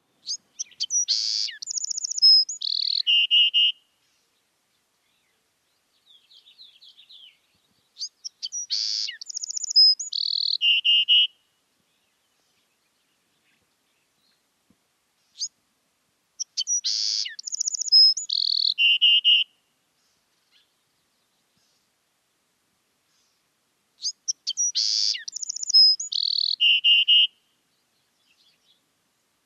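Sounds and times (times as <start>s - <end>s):
wren singing: 0.2s - 3.8s, 6.0s - 11.4s, 16.4s - 19.5s, 24.0s - 27.3s.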